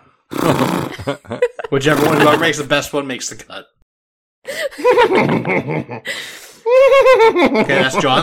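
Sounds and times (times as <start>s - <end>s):
people imitating a horse whinny: 0.3s - 1.0s, 1.9s - 2.5s
people laughing: 0.3s - 2.6s, 4.6s - 6.1s, 6.7s - 8.2s
speech: 0.5s - 3.7s, 4.7s - 8.2s.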